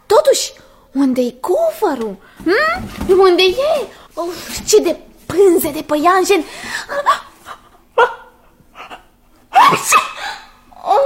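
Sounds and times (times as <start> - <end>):
speech: 0.3 - 7.3
person sneezing: 8.9 - 10.5.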